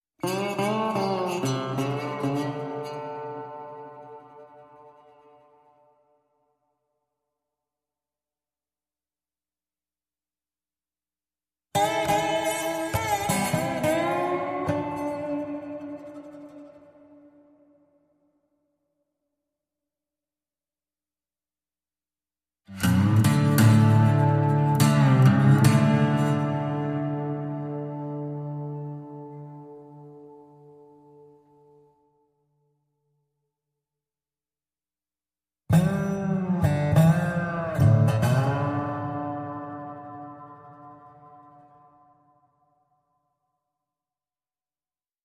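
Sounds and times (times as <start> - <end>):
guitar in D minor: 0.2 - 6.2, 11.7 - 18.1, 22.7 - 32.2, 35.7 - 42.7.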